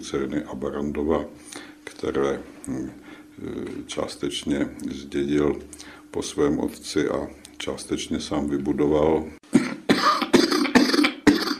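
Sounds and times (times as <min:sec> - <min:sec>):
speech: 0:00.0 - 0:09.4
hoarse coughs from an unwell man: 0:09.5 - 0:11.5.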